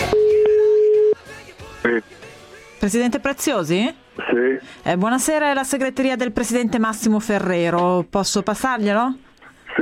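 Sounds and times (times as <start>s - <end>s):
low-pitched telephone ringing tone: 0.1s - 1.2s
speech: 2.8s - 9.8s.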